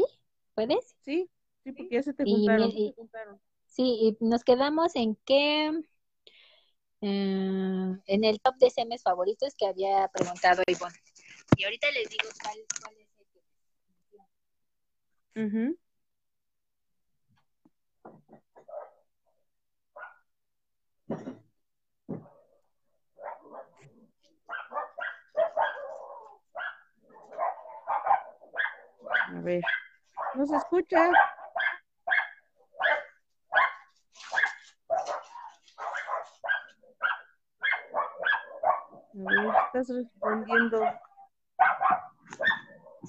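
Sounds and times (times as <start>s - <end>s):
speech: 0.6s - 5.9s, 7.0s - 13.0s, 15.4s - 15.8s, 29.1s - 31.4s, 39.2s - 43.0s
dogs barking: 18.6s - 19.0s, 20.0s - 20.2s, 23.2s - 43.0s.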